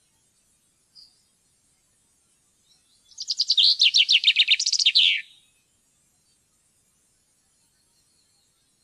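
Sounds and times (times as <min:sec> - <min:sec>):
Common chaffinch singing: 0:03.1 - 0:05.4.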